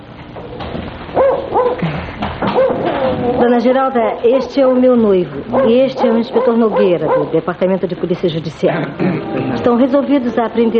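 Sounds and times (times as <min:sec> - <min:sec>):
dogs yelping and whining: 0:01.1 - 0:01.8, 0:02.5 - 0:03.6, 0:05.5 - 0:07.4
speech: 0:03.3 - 0:10.7.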